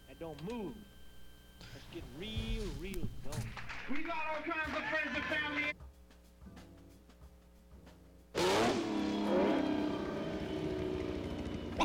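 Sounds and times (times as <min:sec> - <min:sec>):
speech: 0:00.2 - 0:01.0, 0:01.6 - 0:05.9
car engine revving in third gear: 0:08.3 - 0:11.8.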